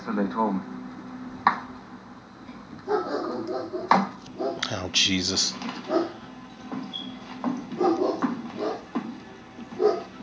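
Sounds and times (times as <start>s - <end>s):
speech: 0.1s - 0.8s, 3.4s - 6.0s
dog barks: 2.8s - 4.7s, 5.8s - 6.2s, 7.7s - 8.9s, 9.8s - 10.2s.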